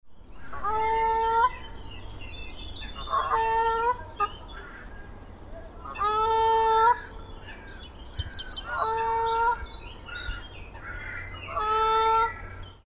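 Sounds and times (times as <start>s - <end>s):
Canada goose: 0.4s - 1.6s, 3.0s - 5.0s, 5.8s - 12.6s.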